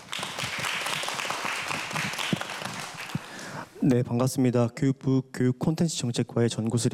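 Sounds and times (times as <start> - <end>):
audience applauding to welcome a speaker to a discussion: 0.0 - 3.6
speech: 3.8 - 6.9.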